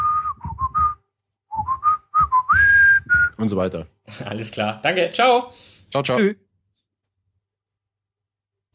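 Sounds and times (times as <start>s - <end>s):
person whistling a lively tune: 0.0s - 3.4s
speech: 3.4s - 6.4s.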